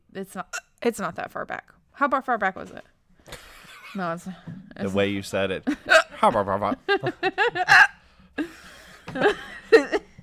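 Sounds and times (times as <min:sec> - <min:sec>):
speech: 0:00.2 - 0:02.9, 0:03.9 - 0:10.0
laughter: 0:05.7 - 0:10.1
person hiccuping after hard laughter: 0:07.6 - 0:08.0.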